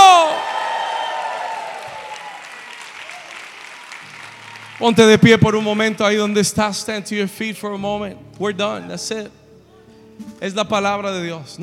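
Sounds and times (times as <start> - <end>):
audience applauding: 0.1 - 6.8
speech: 4.8 - 9.4, 10.2 - 11.6.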